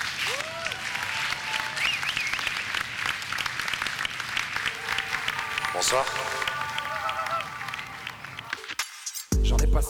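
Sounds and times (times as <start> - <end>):
dense audience applause from a large crowd: 0.0 - 8.8
whistles from a crowd: 1.6 - 2.9
speech: 5.8 - 6.4.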